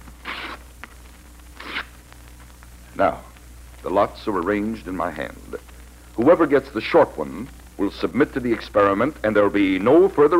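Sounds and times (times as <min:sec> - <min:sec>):
paper torn into strips: 0:00.2 - 0:00.7, 0:01.6 - 0:02.0
speech: 0:03.0 - 0:10.3.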